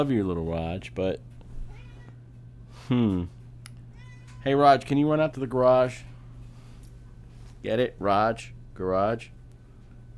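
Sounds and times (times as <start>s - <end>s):
speech: 0.0s - 1.4s, 2.9s - 3.4s, 4.4s - 6.1s, 7.6s - 9.4s
low steady hum: 0.0s - 10.1s
cat meowing: 1.6s - 2.2s, 3.9s - 4.6s.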